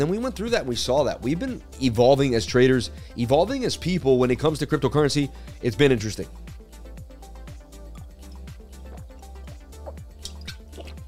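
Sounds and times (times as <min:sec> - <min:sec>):
speech: 0:00.0 - 0:06.4
spring water glugging as it is poured or drunk: 0:09.8 - 0:11.0.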